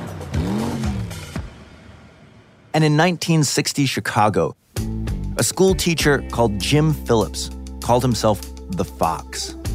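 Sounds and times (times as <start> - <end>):
car engine approaching: 0.0 - 2.7
speech: 2.8 - 9.7.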